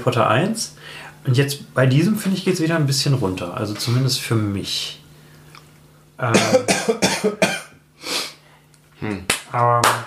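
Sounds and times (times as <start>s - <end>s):
speech: 0.0s - 5.0s, 6.2s - 7.6s, 9.0s - 10.0s
person coughing harshly: 6.3s - 7.8s.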